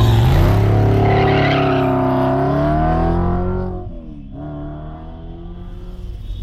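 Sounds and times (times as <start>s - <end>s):
car tyres screeching and sliding: 0.0s - 2.4s
car engine revving hard: 0.0s - 6.4s.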